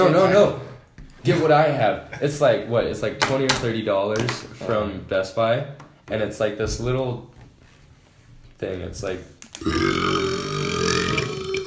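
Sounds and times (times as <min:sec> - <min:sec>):
speech: 0:00.0 - 0:07.3, 0:08.6 - 0:10.7
long loud burp: 0:09.6 - 0:11.6.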